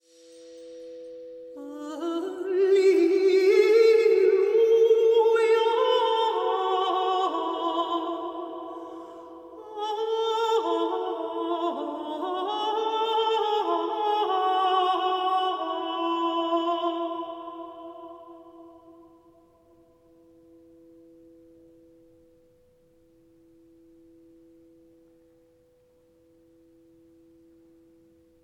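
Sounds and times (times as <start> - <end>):
devotional lauda song: 0.1 - 22.2.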